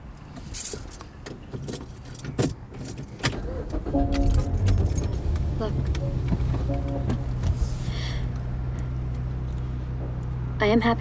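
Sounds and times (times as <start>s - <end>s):
clicks and bumps from inside the vehicle: 0.2s - 7.6s
car engine starting and idling: 0.2s - 10.9s
keys jangling and rattling: 0.3s - 1.0s, 1.6s - 5.2s
speech: 5.6s - 7.2s, 10.6s - 10.9s.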